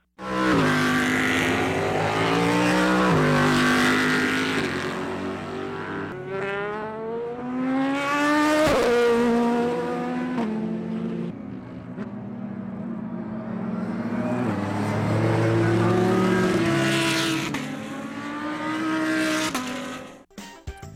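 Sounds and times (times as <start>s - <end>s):
several race car engines starting and revving hard: 0.2s - 20.2s.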